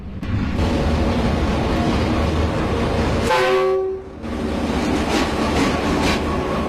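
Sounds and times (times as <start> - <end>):
passenger train rumbling through a century-old mountain station: 0.0 - 6.6
passenger train horn blast: 3.2 - 4.2.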